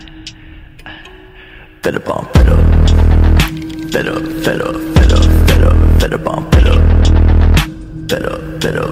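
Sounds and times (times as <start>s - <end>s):
background music ringtone: 0.0s - 8.8s.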